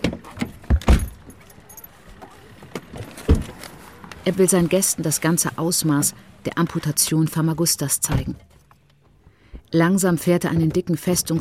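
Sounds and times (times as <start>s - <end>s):
keys jangling: 1.0s - 2.4s
speech: 4.2s - 8.6s, 9.7s - 11.3s.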